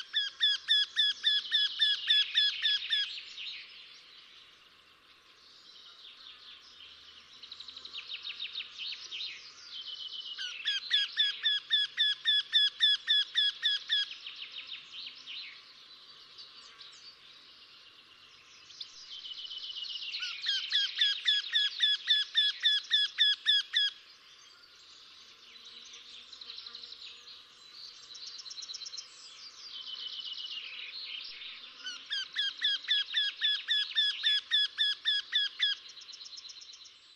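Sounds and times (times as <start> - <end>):
wryneck giving rapid repeated ringing calls: 0.0 - 3.1, 10.4 - 14.1, 20.2 - 24.0, 31.8 - 36.4.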